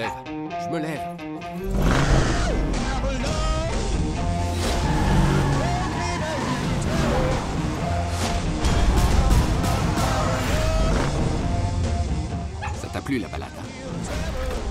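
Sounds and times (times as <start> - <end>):
speech: 0.0 - 2.1, 13.1 - 14.4
driving film trailer score: 0.0 - 14.6
roaring car engines in a film trailer: 1.6 - 12.9.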